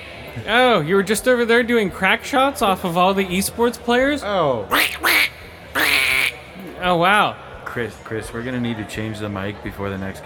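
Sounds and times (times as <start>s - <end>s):
speech: 0.4s - 5.3s, 6.8s - 10.2s
goose honking: 4.7s - 6.4s.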